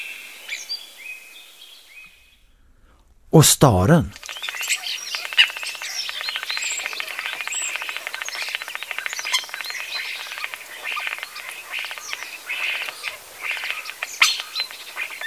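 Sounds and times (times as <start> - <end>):
speech: 3.4 - 4.2
common blackbird singing fluting whistled phrases: 4.2 - 15.2.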